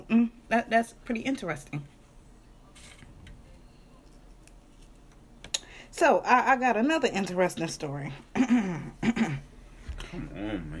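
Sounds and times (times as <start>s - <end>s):
speech: 0.1s - 2.0s, 6.0s - 10.7s
man clearing his throat: 8.4s - 9.5s.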